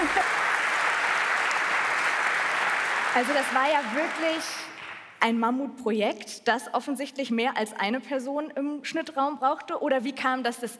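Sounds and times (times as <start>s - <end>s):
audience applause: 0.0s - 5.0s
speech: 3.2s - 10.7s.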